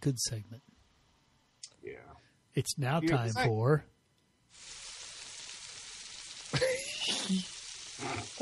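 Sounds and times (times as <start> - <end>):
speech: 0.0 - 0.7, 1.8 - 3.9, 7.3 - 8.4
bacon frying in a pan: 4.5 - 8.4
bacon fat spitting and popping: 6.5 - 8.4.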